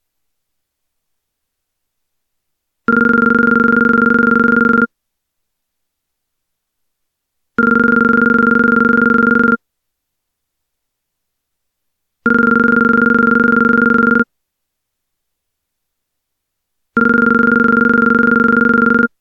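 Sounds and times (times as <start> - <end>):
weird vintage phone ringing: 2.9 - 4.9, 7.6 - 9.6, 12.3 - 14.3, 17.0 - 19.1.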